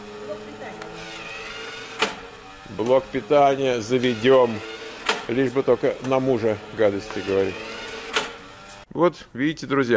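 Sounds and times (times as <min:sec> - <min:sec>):
small homemade ball-launching machine motor whirring: 0:00.0 - 0:08.9
speech: 0:02.7 - 0:04.7, 0:05.3 - 0:07.7, 0:09.0 - 0:09.9.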